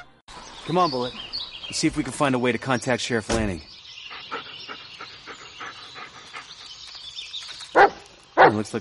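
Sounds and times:
speech: 0:00.7 - 0:03.7, 0:08.5 - 0:08.8
dog panting in a video game: 0:04.0 - 0:06.8
dog barking in a video game: 0:07.8 - 0:08.6.

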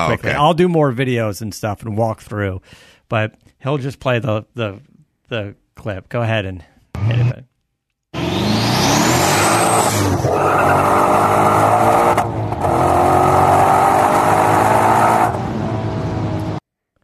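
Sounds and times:
speech: 0:00.0 - 0:07.5, 0:10.2 - 0:11.2
turbocharged car engine roaring and accelerating hard: 0:08.2 - 0:16.6.

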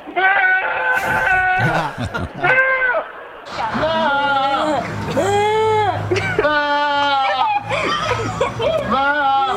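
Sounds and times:
goats screaming like people: 0:00.0 - 0:04.6, 0:06.4 - 0:08.1
laughter: 0:01.0 - 0:02.6, 0:03.5 - 0:09.5.

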